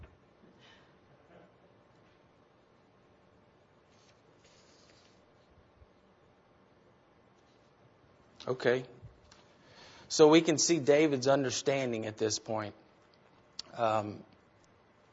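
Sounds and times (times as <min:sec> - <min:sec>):
loose unstapled paper pages shuffling: 0:03.9 - 0:05.2
speech: 0:08.5 - 0:09.0, 0:10.1 - 0:12.8, 0:13.8 - 0:14.3.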